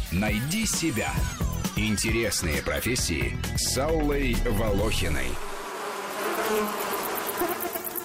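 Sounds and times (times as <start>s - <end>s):
speech: 0.1s - 5.5s, 6.5s - 7.6s
honey bees buzzing: 4.7s - 8.0s.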